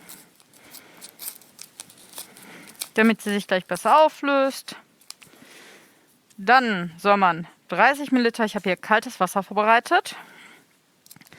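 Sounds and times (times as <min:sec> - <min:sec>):
dye tablet being crushed between two sheets of paper: 0:00.0 - 0:04.2, 0:05.0 - 0:05.4
speech: 0:03.0 - 0:04.8, 0:06.4 - 0:10.3.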